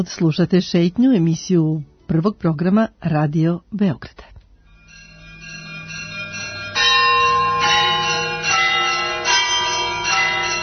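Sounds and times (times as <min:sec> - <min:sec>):
speech: 0:00.0 - 0:04.3
monastery church bells ringing at Hilandar on Mount Athos: 0:04.7 - 0:10.6.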